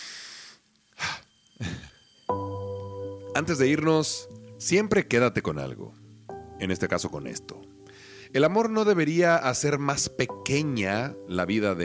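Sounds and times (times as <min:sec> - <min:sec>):
deep breath in and out: 0:00.0 - 0:01.9, 0:07.8 - 0:08.3
tonal musical sound: 0:01.6 - 0:11.8
speech: 0:03.4 - 0:06.0, 0:06.6 - 0:07.6, 0:08.3 - 0:11.8.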